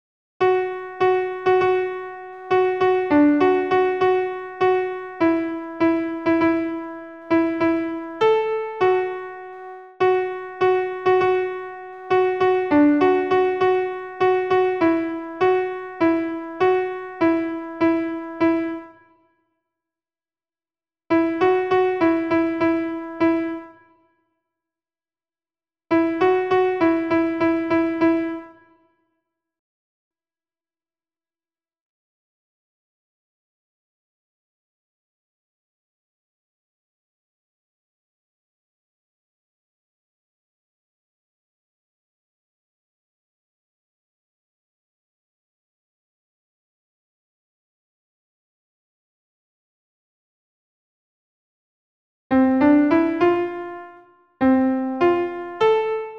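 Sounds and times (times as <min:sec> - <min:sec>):
solo alto piano: 0:00.4 - 0:19.0, 0:21.1 - 0:23.9, 0:25.9 - 0:28.6, 0:52.3 - 0:56.1.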